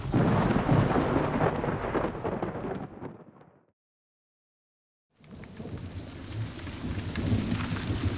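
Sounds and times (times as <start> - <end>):
steady rain pouring: 0.0 - 3.2, 5.2 - 8.1
low rumbling thunder: 0.0 - 3.6, 5.3 - 8.1.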